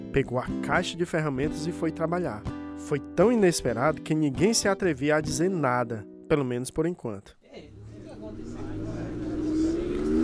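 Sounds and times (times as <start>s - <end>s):
speech: 0.2s - 7.7s
car engine revving: 7.8s - 10.2s.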